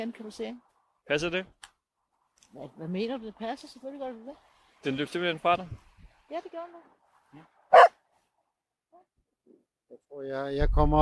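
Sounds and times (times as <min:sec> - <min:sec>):
speech: 0:00.0 - 0:01.7, 0:02.5 - 0:08.0, 0:09.9 - 0:11.0
dog barking on a heath: 0:07.7 - 0:08.0.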